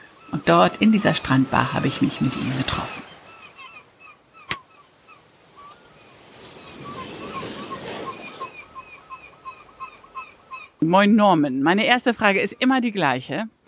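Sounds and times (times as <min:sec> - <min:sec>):
waves washing in on a beach: 0:00.0 - 0:10.6
birds chirping: 0:00.0 - 0:13.6
steady wind on a beach: 0:00.0 - 0:13.6
speech: 0:00.4 - 0:03.1, 0:10.8 - 0:13.6.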